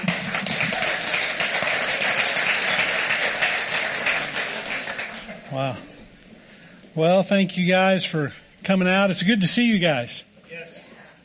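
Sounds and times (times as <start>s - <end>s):
crowd applauding a worship team: 0.0s - 5.8s
speech: 5.6s - 5.9s, 7.0s - 10.8s.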